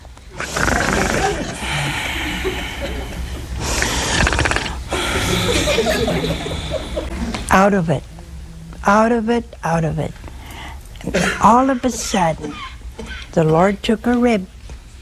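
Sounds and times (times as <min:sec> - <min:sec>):
voice imitating loud snoring: 0:00.3 - 0:02.1, 0:03.6 - 0:05.7
laughter: 0:00.8 - 0:04.1, 0:04.9 - 0:07.5
speech: 0:07.6 - 0:08.1, 0:08.8 - 0:10.2, 0:11.0 - 0:14.6.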